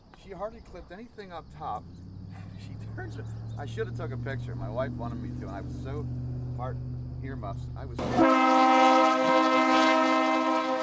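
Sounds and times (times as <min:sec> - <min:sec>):
speech: 0:00.3 - 0:09.3
train whistle: 0:08.0 - 0:10.8.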